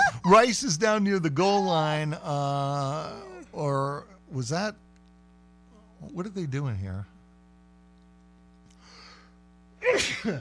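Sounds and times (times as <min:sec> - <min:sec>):
speech: 0:00.3 - 0:04.8, 0:06.0 - 0:07.1, 0:09.8 - 0:10.4
person sneezing: 0:09.8 - 0:10.4.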